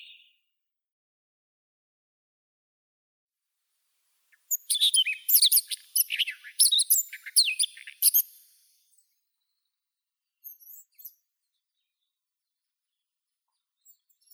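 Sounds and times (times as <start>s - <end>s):
Siberian rubythroat Luscinia calliope: 4.5s - 8.5s.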